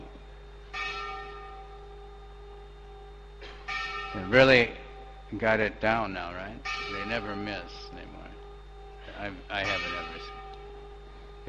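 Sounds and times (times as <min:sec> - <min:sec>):
low steady hum: 0:00.0 - 0:11.4
single church-style bell ringing: 0:00.7 - 0:11.4
speech: 0:04.2 - 0:08.2, 0:09.2 - 0:10.4.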